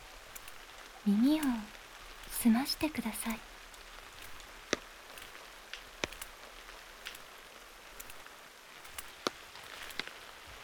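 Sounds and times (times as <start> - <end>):
rain drumming on an umbrella: 0.0 - 10.6
speech: 1.0 - 1.7, 2.4 - 3.5.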